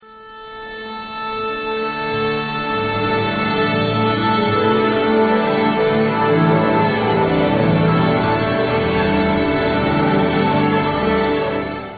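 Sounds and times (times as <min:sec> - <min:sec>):
orchestra warming up: 0:00.6 - 0:11.9.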